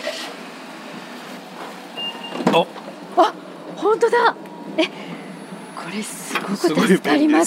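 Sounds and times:
car power sliding door electronic beep: 2.0 - 2.4
speech: 2.6 - 5.2, 5.8 - 7.4.

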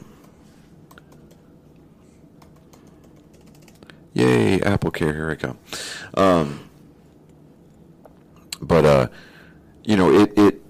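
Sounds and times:
low steady hum: 0.0 - 10.6
faint typing on a computer keyboard: 0.9 - 1.4, 2.4 - 3.9
speech: 4.2 - 6.7, 8.8 - 10.6.

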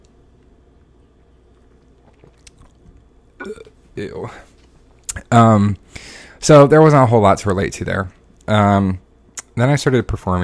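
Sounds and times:
person sipping kombucha: 1.4 - 3.8
soft wet mouth clicks: 1.6 - 2.9
gulp: 1.8 - 3.8
speech: 3.4 - 4.5, 5.3 - 9.0, 9.6 - 10.4.

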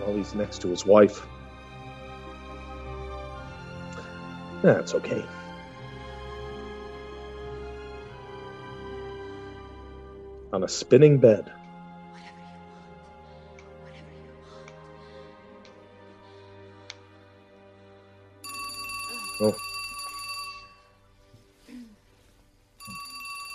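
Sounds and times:
speech: 0.0 - 1.4, 4.6 - 5.4, 10.5 - 11.6, 19.4 - 19.6
low hum of music: 0.0 - 23.5
telephone ringing: 18.4 - 21.0, 22.8 - 23.5.

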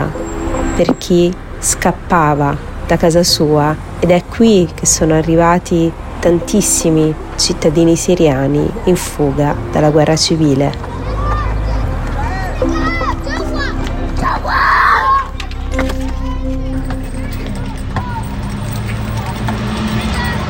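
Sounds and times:
busy open-air background: 0.0 - 20.4
speech: 0.8 - 10.9
children shouting while playing football outdoors: 10.8 - 18.5, 19.2 - 20.4.

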